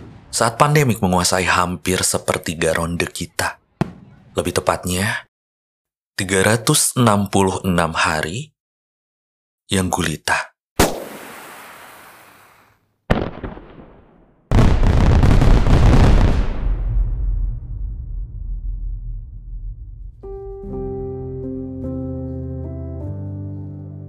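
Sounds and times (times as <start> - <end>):
heavy fireworks blasts booming with long tail: 0.0 - 0.7, 3.8 - 4.4, 10.8 - 17.1
speech: 0.3 - 3.6, 4.4 - 5.3, 6.2 - 8.5, 9.7 - 10.5.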